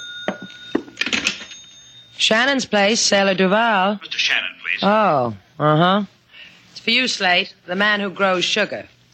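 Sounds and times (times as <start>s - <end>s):
telephone ringing with a jangly bell: 0.0s - 2.6s
speech: 2.2s - 6.2s, 6.8s - 8.9s.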